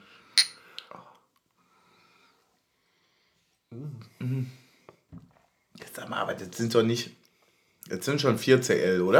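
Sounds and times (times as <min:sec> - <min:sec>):
drinking glasses clinking in a toast: 0:00.4 - 0:00.8
speech: 0:03.7 - 0:04.6, 0:06.0 - 0:07.2, 0:07.9 - 0:09.1.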